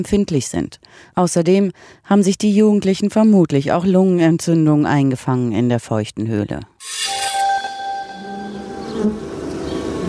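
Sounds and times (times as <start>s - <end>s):
speech: 0.0s - 7.0s
wasps buzzing: 6.8s - 10.0s.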